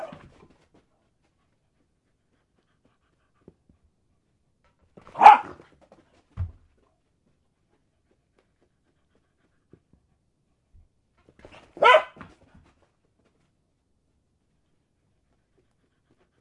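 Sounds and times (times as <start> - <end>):
dog barking while playing fetch: 0.0 - 0.2, 5.1 - 5.6, 11.7 - 12.3.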